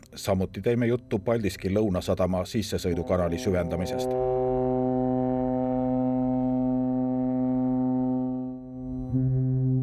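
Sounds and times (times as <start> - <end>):
speech: 0.2 - 4.3
passenger ferry foghorns blaring across open water: 2.8 - 9.7.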